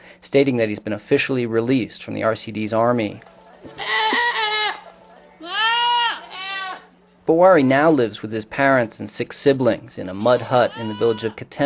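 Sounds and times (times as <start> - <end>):
faint steady hum: 0.0 - 11.6
speech: 0.2 - 3.8, 7.3 - 11.6
goat bleating with a quavering nasal tone: 3.7 - 6.9, 10.1 - 11.4.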